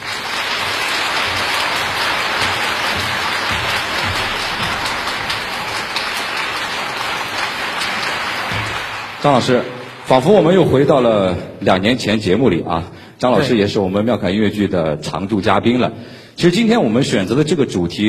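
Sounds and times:
audience clapping to welcome a music director: 0:00.0 - 0:11.3
speech: 0:09.2 - 0:18.0.

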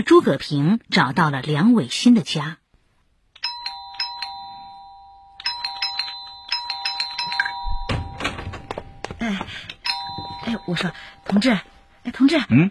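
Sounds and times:
speech: 0:00.0 - 0:02.6, 0:10.7 - 0:12.6
doorbell ringing in insistent bursts: 0:03.4 - 0:12.0
thumping and rattling at a door: 0:07.6 - 0:10.4.

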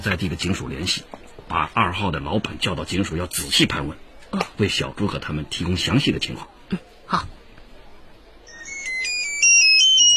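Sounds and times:
speech: 0:00.0 - 0:07.4
mobile phone ringtone: 0:08.5 - 0:10.1.

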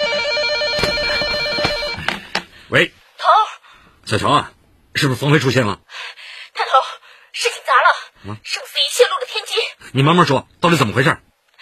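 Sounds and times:
telephone ringing with a shrill electronic trill: 0:00.0 - 0:02.2
brief sharp knocks: 0:00.8 - 0:02.5
speech: 0:02.7 - 0:03.4, 0:04.1 - 0:06.2, 0:07.4 - 0:11.3.

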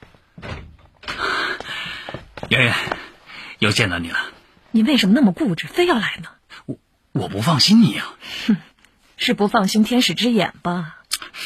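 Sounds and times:
hotel-room door thud: 0:00.4 - 0:01.2
speech: 0:02.5 - 0:03.0, 0:03.6 - 0:11.0.

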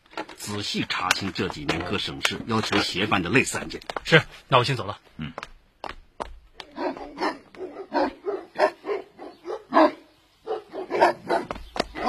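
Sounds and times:
speech: 0:00.4 - 0:05.5
police dog barking: 0:06.7 - 0:12.0.

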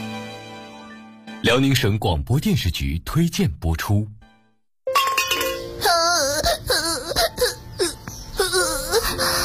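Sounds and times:
speech: 0:01.4 - 0:04.2
person imitating a small boy crying: 0:05.8 - 0:09.3.

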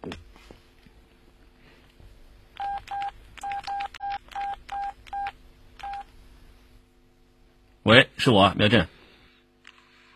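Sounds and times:
telephone keypad tones dialing a call: 0:02.6 - 0:06.1
speech: 0:07.9 - 0:09.0.

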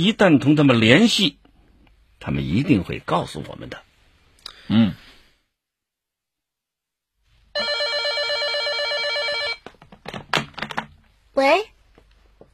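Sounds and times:
speech: 0:00.0 - 0:01.4, 0:02.2 - 0:03.9, 0:04.7 - 0:05.0, 0:11.4 - 0:11.7
telephone bell ringing with a dense metallic trill: 0:07.6 - 0:09.6
clattering handling sounds as the phone is answered: 0:09.6 - 0:11.0.

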